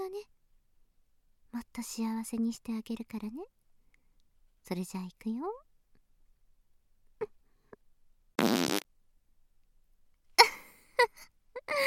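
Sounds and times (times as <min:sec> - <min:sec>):
speech: 0:01.5 - 0:03.6, 0:04.7 - 0:05.6
loud rumbling buzzy fart: 0:08.4 - 0:08.8.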